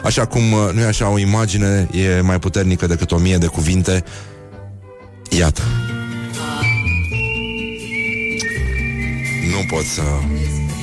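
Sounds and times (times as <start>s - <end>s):
steady instrumental backing music: 0.0s - 10.8s
speech: 0.1s - 4.4s, 5.3s - 5.9s, 9.5s - 10.7s
whistled melody: 5.8s - 10.8s.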